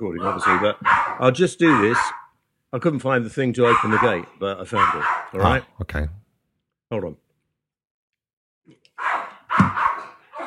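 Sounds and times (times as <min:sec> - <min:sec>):
dogs barking: 0:00.0 - 0:02.4, 0:03.6 - 0:05.7, 0:08.9 - 0:10.4
speech: 0:00.0 - 0:06.2, 0:06.9 - 0:07.2.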